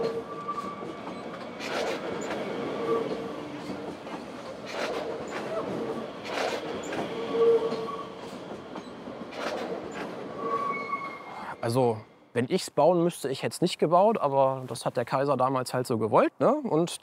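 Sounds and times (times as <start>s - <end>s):
thin metallic train wheel squeals: 0.0s - 3.7s, 6.8s - 9.0s, 9.9s - 11.4s
train clattering bursts: 0.0s - 11.0s
train rumbling through a station: 0.0s - 12.4s
speech: 11.7s - 17.0s.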